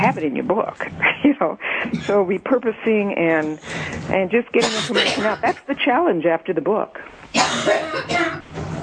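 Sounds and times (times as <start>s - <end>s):
speech: 0.1s - 8.7s
person coughing: 4.6s - 5.7s, 7.3s - 8.4s.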